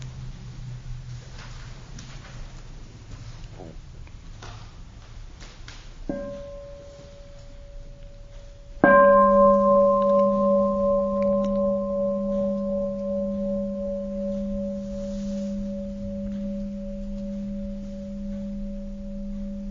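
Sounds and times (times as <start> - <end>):
single deep bell ringing: 6.1 - 19.7.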